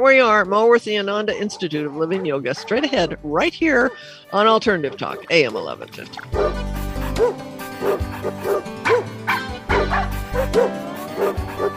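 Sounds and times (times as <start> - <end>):
speech: 0.0 - 8.9, 10.4 - 11.6
dog barking and yapping: 1.5 - 2.9, 6.4 - 11.7.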